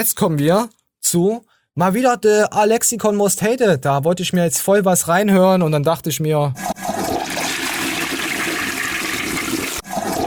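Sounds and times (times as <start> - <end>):
speech: 0.0 - 7.2
toilet flushing: 6.6 - 10.2.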